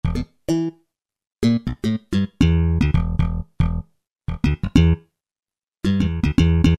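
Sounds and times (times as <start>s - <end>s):
slap bass on Kurzweil K2000: 0.0s - 0.7s, 1.4s - 5.0s, 5.8s - 6.7s.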